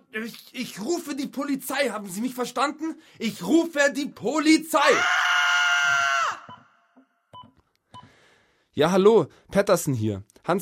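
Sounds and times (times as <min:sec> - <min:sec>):
speech: 0:00.1 - 0:05.3, 0:08.8 - 0:10.6
old woman screaming in a stairwell: 0:04.8 - 0:06.6.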